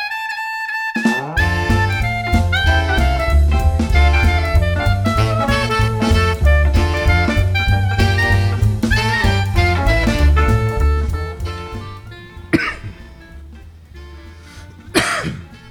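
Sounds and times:
steady music: 1.2s - 15.6s
person coughing: 12.5s - 13.0s, 14.9s - 15.6s.

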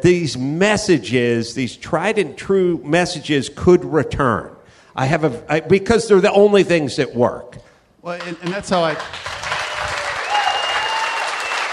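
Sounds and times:
speech: 0.0s - 9.3s
audience applauding: 8.1s - 11.7s
faint whistle: 10.2s - 11.7s.

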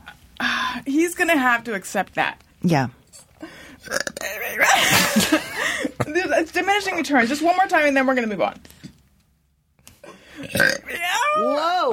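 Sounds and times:
speech: 0.8s - 3.0s, 6.2s - 8.7s, 11.4s - 11.9s
loud drawn-out throaty burp: 3.8s - 4.8s, 10.4s - 11.6s.

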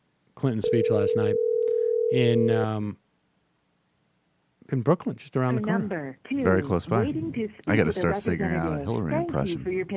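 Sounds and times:
speech: 0.4s - 1.5s, 2.1s - 3.0s, 4.7s - 9.9s
electronic telephone ringing: 0.6s - 2.6s.

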